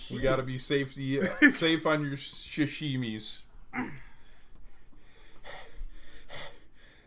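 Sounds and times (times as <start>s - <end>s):
speech: 0.1s - 4.0s
heavy rasping breathing: 3.8s - 7.0s.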